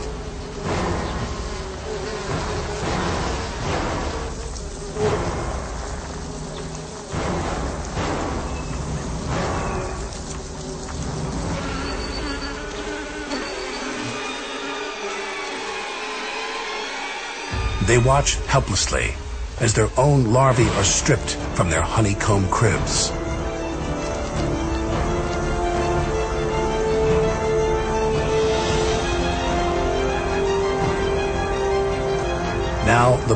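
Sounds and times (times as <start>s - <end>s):
faint crackling and rustling: 0.0s - 13.0s
dense swarm of wasps buzzing around their nest in the treetops: 0.0s - 33.3s
speech: 17.9s - 23.2s, 32.9s - 33.3s.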